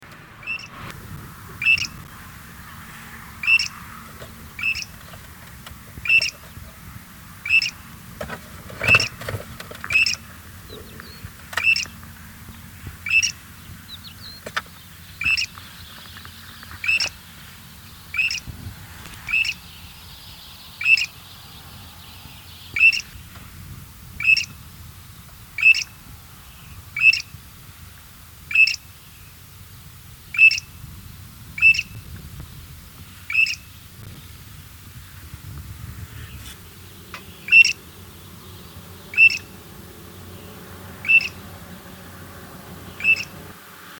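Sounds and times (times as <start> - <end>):
Arabian Grey Shrike calling: 0.4 - 0.8, 1.6 - 8.2, 9.8 - 18.5, 19.2 - 23.2, 24.2 - 24.6, 25.6 - 27.3, 28.5 - 29.4, 30.3 - 30.8, 31.6 - 32.0, 33.2 - 33.9, 36.2 - 43.5.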